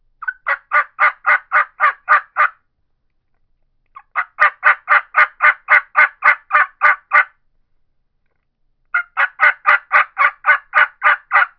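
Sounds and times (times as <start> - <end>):
Rio Grande special turkey mouth call yelps: 0.2 - 2.6, 3.9 - 7.3, 8.9 - 11.5.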